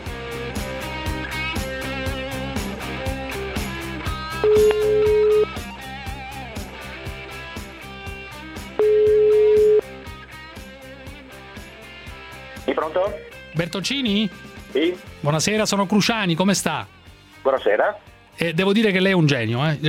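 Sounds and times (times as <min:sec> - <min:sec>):
rhythmic music with a regular beat: 0:00.0 - 0:19.8
placed telephone call ringing: 0:04.4 - 0:05.6, 0:08.8 - 0:09.8
speech: 0:13.8 - 0:19.8.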